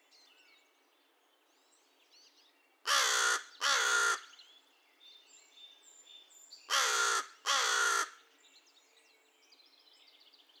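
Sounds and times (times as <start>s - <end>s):
American crow cawing: 2.9s - 4.3s, 6.7s - 8.2s.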